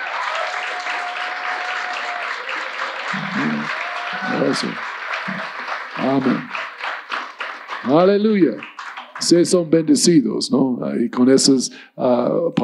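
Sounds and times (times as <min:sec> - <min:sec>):
church audience applauding: 0:00.0 - 0:09.8
voices calling out and murmuring: 0:03.0 - 0:05.4
speech: 0:03.3 - 0:06.6, 0:07.8 - 0:12.6.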